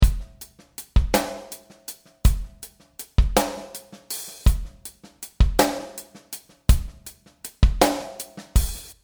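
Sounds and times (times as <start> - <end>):
drum with reverb: 0.0 - 9.0.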